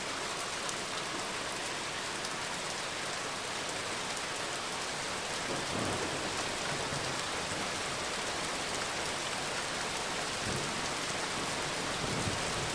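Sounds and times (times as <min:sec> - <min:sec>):
storm rain pattering on a verandah roof: 0:00.0 - 0:12.7.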